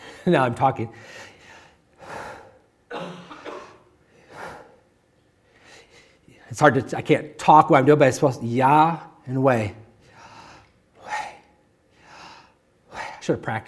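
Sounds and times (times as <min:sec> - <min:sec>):
speech: 0:00.2 - 0:01.3, 0:06.5 - 0:09.8, 0:13.3 - 0:13.6
slow deliberate breathing: 0:00.9 - 0:02.7, 0:03.4 - 0:06.5, 0:10.0 - 0:13.2.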